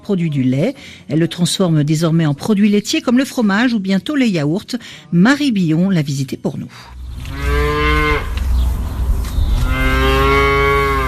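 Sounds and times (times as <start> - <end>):
outdoor noise on a farm in Norfolk: 0.0 - 11.0
speech: 0.1 - 7.7
dairy cow mooing in a sunny pasture on a farm in Norfolk: 7.2 - 8.4, 9.6 - 11.0.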